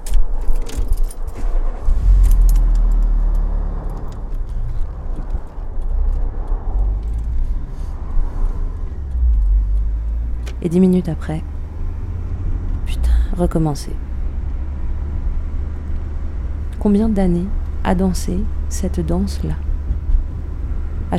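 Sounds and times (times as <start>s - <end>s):
keys jangling: 0.0s - 1.4s, 2.1s - 4.6s
car engine starting and pulling away beside a motorway: 0.7s - 21.1s
speech: 10.6s - 11.5s, 13.4s - 14.0s, 16.8s - 19.6s.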